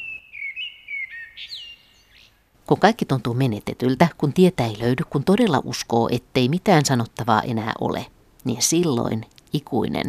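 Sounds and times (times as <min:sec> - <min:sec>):
Common blackbird singing fluting whistles: 0:00.0 - 0:02.4
speech: 0:01.4 - 0:01.6, 0:02.7 - 0:10.0.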